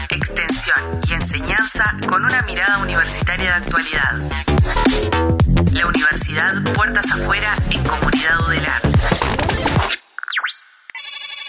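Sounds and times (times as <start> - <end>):
speech: 0.6 - 9.3
electronic telephone ringtone for an incoming call: 10.3 - 11.4.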